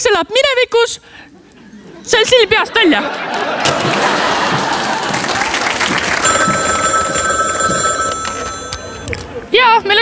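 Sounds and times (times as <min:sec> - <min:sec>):
speech: 0:00.0 - 0:01.4, 0:02.0 - 0:04.4, 0:09.6 - 0:10.0
crowd noise: 0:01.3 - 0:10.0
laughter: 0:01.4 - 0:06.3
loud steady applause: 0:03.3 - 0:07.6
telephone bell ringing: 0:06.2 - 0:09.2.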